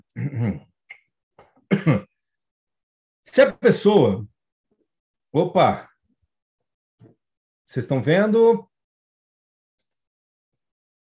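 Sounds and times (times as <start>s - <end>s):
throat sounds: 0.0s - 2.0s
person coughing: 0.1s - 0.6s, 1.7s - 2.1s
speech: 3.4s - 4.3s, 5.3s - 5.9s, 7.7s - 8.7s.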